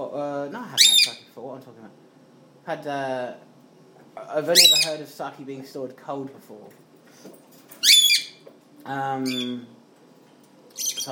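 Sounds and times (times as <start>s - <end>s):
parrot squawking: 0.8s - 1.3s, 4.5s - 5.0s, 7.8s - 8.4s, 9.2s - 9.6s, 10.7s - 11.1s
speech: 2.7s - 3.5s, 4.2s - 7.4s, 8.8s - 9.8s, 10.8s - 11.1s.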